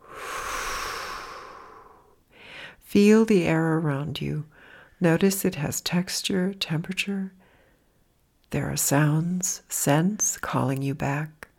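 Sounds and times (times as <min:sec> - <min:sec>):
long deep exhale through the mouth: 0:00.0 - 0:02.8
speech: 0:02.9 - 0:07.4, 0:08.5 - 0:11.4.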